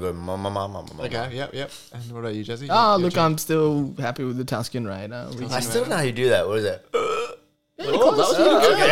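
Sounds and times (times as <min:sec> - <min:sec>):
speech: 0:00.0 - 0:07.1, 0:07.9 - 0:08.9
attempted burp made by sucking air inward: 0:06.9 - 0:07.5
laughter: 0:07.8 - 0:08.9.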